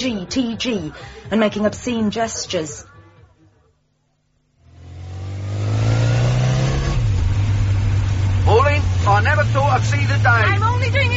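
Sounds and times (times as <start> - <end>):
speech: 0.0 - 2.9, 8.5 - 11.1
car engine turning over, catching and revving to a rough drone: 4.6 - 11.1.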